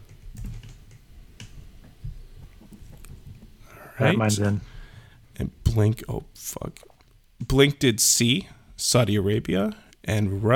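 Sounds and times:
typing on a computer keyboard: 0.0 - 1.6
speech: 4.0 - 4.8, 5.4 - 10.5.

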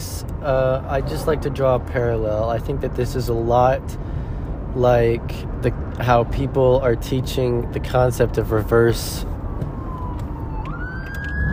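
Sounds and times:
road traffic rumble: 0.0 - 11.5
speech: 0.4 - 4.1, 4.7 - 9.3
ambulance siren wailing: 9.4 - 11.5.

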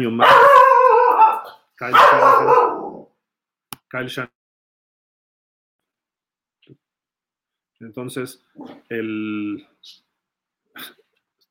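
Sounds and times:
speech: 0.0 - 0.6, 1.8 - 2.7, 3.9 - 4.4, 7.8 - 10.0, 10.8 - 11.0
dog barking and yipping: 0.2 - 3.1.

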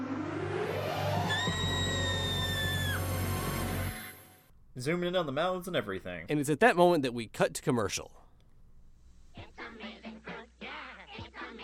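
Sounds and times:
children screaming: 1.0 - 3.9
speech: 4.8 - 8.2.

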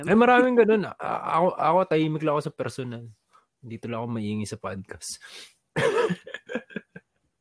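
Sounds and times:
speech: 0.0 - 6.6
person coughing: 5.8 - 7.0
laughter: 6.0 - 7.0.

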